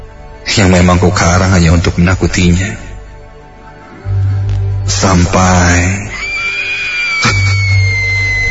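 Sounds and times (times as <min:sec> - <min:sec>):
speech: 0:00.5 - 0:02.9, 0:05.0 - 0:06.1
young girl screaming muffled from outside the room: 0:06.1 - 0:08.5.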